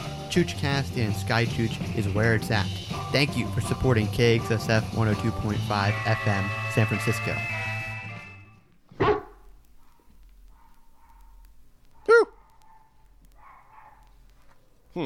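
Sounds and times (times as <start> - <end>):
speech: 0.3 - 7.6
dog barking: 9.0 - 14.2.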